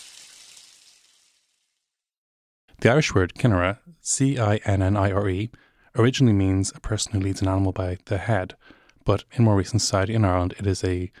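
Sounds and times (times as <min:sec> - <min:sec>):
running shower water: 0:00.0 - 0:01.8
speech: 0:02.8 - 0:11.1.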